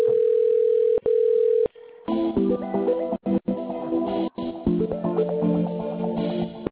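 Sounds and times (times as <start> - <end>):
telephone ringing tones over a phone line: 0.0 - 1.7
tinny line-quality telephone hold music: 2.0 - 6.7.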